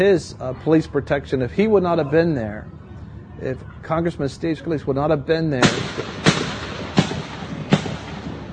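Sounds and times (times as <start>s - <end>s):
speech: 0.0s - 2.8s, 3.4s - 6.2s
steady rushing noise: 0.0s - 8.5s
gunshots from police officers firing back at a suspect: 5.6s - 8.5s.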